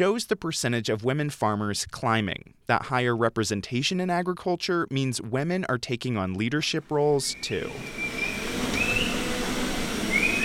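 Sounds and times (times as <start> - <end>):
speech: 0.0 - 8.2
people whistling to coax black and white dairy cows into milking stalls: 7.3 - 9.2, 10.1 - 10.4.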